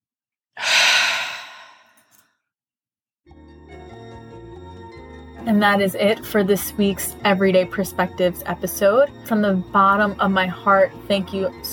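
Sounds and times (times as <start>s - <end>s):
deep breath in and sigh: 0.6s - 2.2s
soft music: 3.3s - 11.7s
speech: 5.4s - 11.7s.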